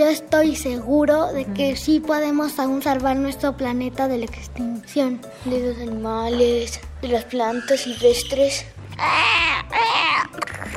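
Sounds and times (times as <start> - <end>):
speech: 0.0 - 9.9
person imitating a woodpecker: 7.6 - 10.7.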